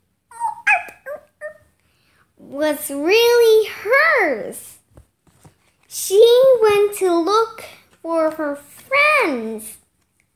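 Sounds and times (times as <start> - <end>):
little puppy whimpering: 0.3 - 1.7
speech: 2.5 - 4.8, 6.0 - 9.8.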